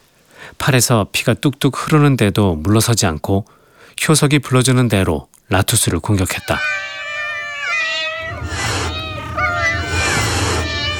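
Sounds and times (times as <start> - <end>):
speech: 0.7 - 7.0
cat yowling during attack: 6.2 - 10.9.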